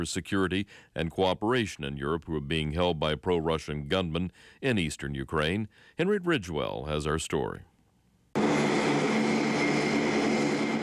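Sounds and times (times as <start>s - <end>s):
speech: 0.0s - 7.7s
transport plane engines droning with a propeller-like hum: 8.4s - 10.8s.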